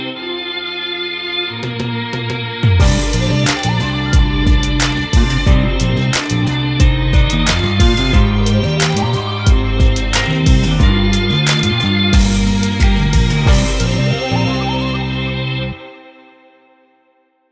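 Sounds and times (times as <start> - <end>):
mellotron boom bap beat: 1.5 - 15.8.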